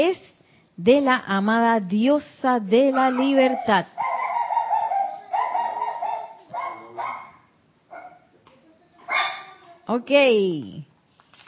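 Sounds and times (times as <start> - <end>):
speech: 0.0 - 4.0, 9.9 - 10.9
dog barking: 2.9 - 8.3, 9.1 - 9.6.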